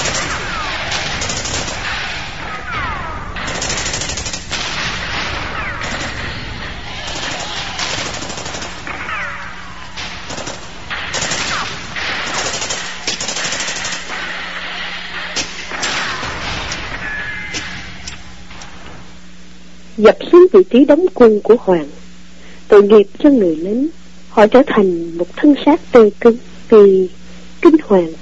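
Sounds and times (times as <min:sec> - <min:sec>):
enemy artillery fire in heavy battlefield shelling: 0:00.0 - 0:18.6
artillery shell explosions with crackling bursts: 0:00.0 - 0:19.4
speech: 0:20.0 - 0:22.0, 0:22.7 - 0:28.2.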